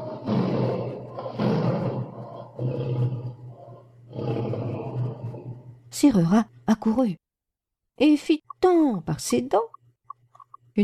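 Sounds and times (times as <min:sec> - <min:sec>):
lion roaring: 0:00.0 - 0:05.8
speech: 0:06.0 - 0:07.2, 0:08.0 - 0:09.8.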